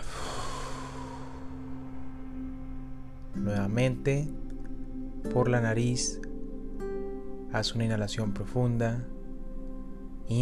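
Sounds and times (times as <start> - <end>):
deep exhale through the mouth during a guided breathing exercise: 0.0 - 2.0
faint steady hum: 0.0 - 10.4
speech: 3.4 - 4.4, 5.2 - 6.2, 7.5 - 9.1.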